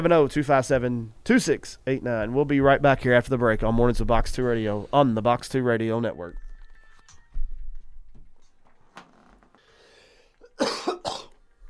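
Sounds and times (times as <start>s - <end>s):
speech: 0.0s - 6.4s
person coughing harshly: 10.4s - 11.4s.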